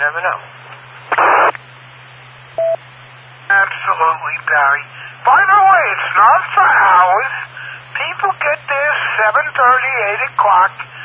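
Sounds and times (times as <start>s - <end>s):
speech: 0.0s - 1.6s, 4.0s - 7.4s, 9.2s - 10.9s
faint steady low hum: 0.0s - 11.0s
touch-tone beeps from a house phone being dialed: 2.6s - 2.8s.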